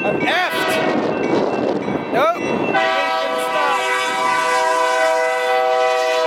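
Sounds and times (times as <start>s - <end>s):
low rumble of a passing train: 0.0s - 6.2s
train horn blaring on rail line: 0.5s - 1.1s, 2.7s - 6.2s.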